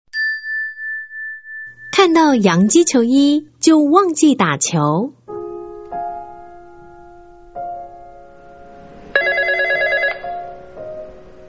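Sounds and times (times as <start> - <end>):
speech: 2.0 - 5.2
telephone ringing with an electronic melody: 9.2 - 10.5.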